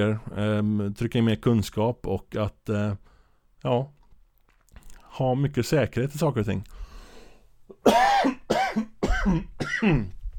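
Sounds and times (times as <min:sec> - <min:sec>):
speech: 0:00.0 - 0:04.0, 0:05.2 - 0:06.8, 0:07.8 - 0:10.2
harsh raspy coughs: 0:07.7 - 0:10.2.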